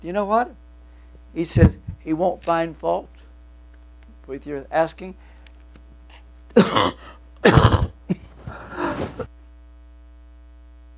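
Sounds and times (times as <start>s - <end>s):
speech: 0.0s - 0.6s, 1.3s - 3.2s, 4.3s - 5.3s, 6.6s - 7.7s
person clearing their throat: 6.1s - 9.3s
person coughing: 6.1s - 9.3s.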